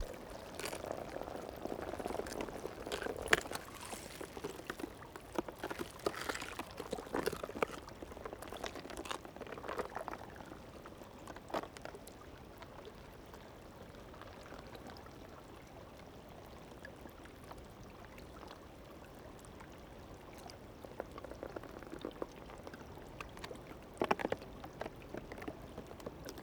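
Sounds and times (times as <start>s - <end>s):
ice on stream: 0.0s - 10.4s
wind: 0.0s - 26.4s.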